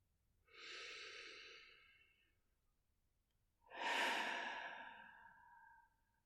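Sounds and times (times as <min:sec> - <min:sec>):
deep breath in through nose: 0:00.5 - 0:02.1, 0:03.7 - 0:06.0.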